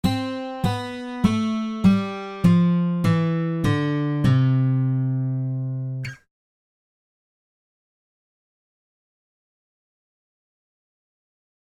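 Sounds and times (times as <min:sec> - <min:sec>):
guitar playing notes do si la: 0:00.0 - 0:06.3.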